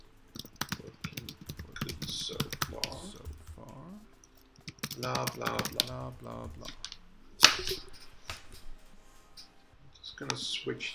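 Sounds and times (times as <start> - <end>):
typing a comment on a computer keyboard: 0.3 - 7.7
speech: 5.0 - 6.8, 7.6 - 8.1, 10.2 - 10.9.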